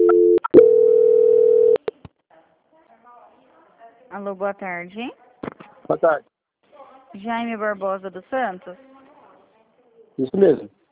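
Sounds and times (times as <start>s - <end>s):
telephone line tone during call transfer: 0.0s - 1.8s
speech: 4.2s - 5.2s, 5.9s - 6.3s, 7.1s - 8.9s, 10.2s - 10.8s.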